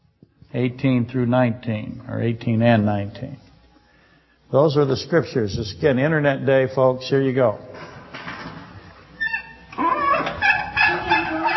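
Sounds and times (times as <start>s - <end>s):
speech: 0.5s - 3.4s, 4.5s - 8.3s
chicken clucking and squawking: 9.8s - 11.5s.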